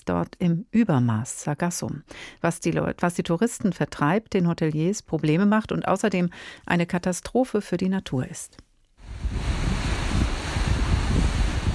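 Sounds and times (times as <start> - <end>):
speech: 0.0 - 9.5
gently lapping sea waves: 9.0 - 11.7
strong wind buffeting with low rumbling gusts: 9.0 - 11.7.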